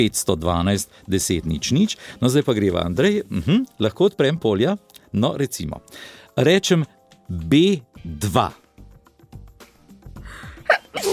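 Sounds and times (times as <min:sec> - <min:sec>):
speech: 0:00.0 - 0:08.6
person sneezing: 0:10.6 - 0:11.1.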